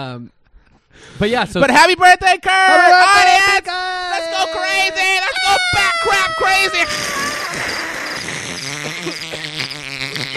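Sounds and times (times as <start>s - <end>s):
speech: 0.0s - 7.8s
cricket chirping sound effect: 6.6s - 10.3s.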